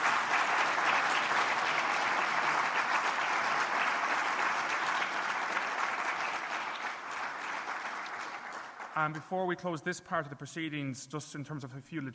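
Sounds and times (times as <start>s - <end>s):
large conference audience applauding a speaker: 0.0s - 9.2s
speech: 9.0s - 12.1s.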